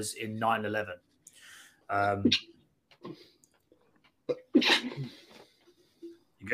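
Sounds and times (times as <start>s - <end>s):
speech: 0.0s - 1.1s, 1.9s - 3.3s, 4.3s - 5.2s
man sneezing loudly: 4.5s - 5.3s.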